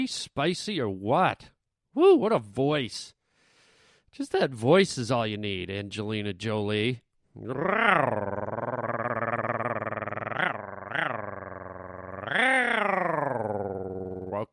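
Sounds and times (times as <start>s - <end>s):
speech: 0.0s - 3.2s, 4.1s - 8.8s
person's voice imitating a cat's purr: 7.4s - 14.5s.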